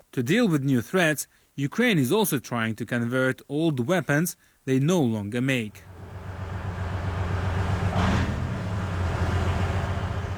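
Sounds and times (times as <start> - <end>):
speech: 0.2 - 5.9
heavy engine drone of a Soviet OSA wheeled armored anti-aircraft missile vehicle driving into cover: 5.8 - 10.3.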